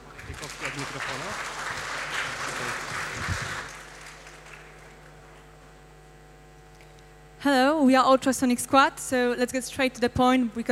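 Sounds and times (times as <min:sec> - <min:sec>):
crowd applause welcoming a team presentation: 0:00.0 - 0:05.4
speech: 0:00.3 - 0:03.6, 0:07.4 - 0:10.6.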